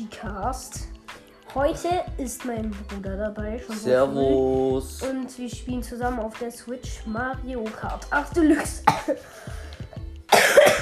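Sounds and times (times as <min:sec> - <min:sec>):
speech: 0:00.1 - 0:09.6
short coughs: 0:08.8 - 0:09.2, 0:10.3 - 0:10.8.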